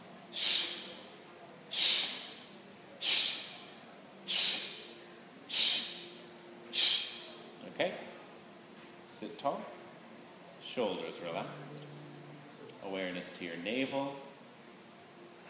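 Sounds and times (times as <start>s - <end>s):
forceful exhales with belly pumping in a breathing exercise: 0.3s - 1.1s, 1.7s - 3.7s, 4.3s - 4.9s, 5.5s - 6.1s, 6.7s - 7.4s
speech: 10.8s - 11.9s, 12.9s - 14.2s.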